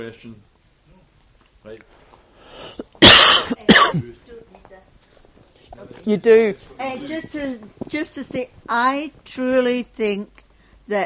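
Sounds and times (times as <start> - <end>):
speech: 0.0 - 0.5, 1.6 - 2.1, 3.9 - 5.0, 5.8 - 11.0
harsh loud coughs: 2.7 - 4.1.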